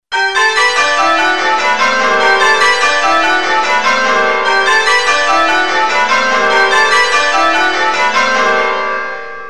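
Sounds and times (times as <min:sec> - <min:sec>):
change ringing bells: 0:00.1 - 0:09.4.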